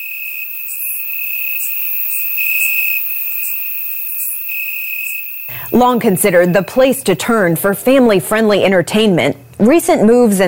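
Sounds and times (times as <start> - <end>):
crickets chirping in a dense continuous trill: 0.0 - 7.1
speech: 5.7 - 10.4.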